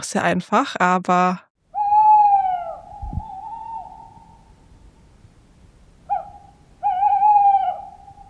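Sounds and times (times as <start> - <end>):
speech: 0.0 - 1.5
tawny owl hooting: 1.7 - 4.8, 6.0 - 8.2.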